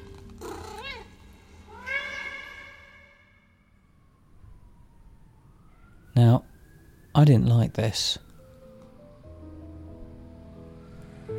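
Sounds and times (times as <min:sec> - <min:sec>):
cat meowing: 0:00.4 - 0:03.3
speech: 0:07.2 - 0:08.3.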